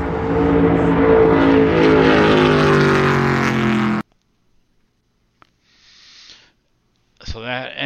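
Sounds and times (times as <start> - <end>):
race car passing at 175 mph on a speedway track: 0.0 - 4.0
speech: 7.4 - 7.8.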